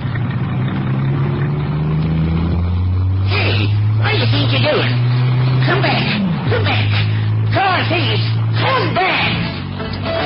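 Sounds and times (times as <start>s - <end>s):
used convertible car engine revving: 0.0s - 10.2s.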